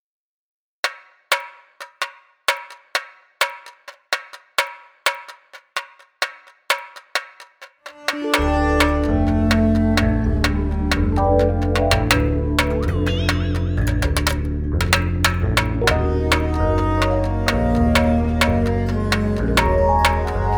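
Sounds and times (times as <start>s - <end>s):
space tamborim: 4.6s - 20.5s.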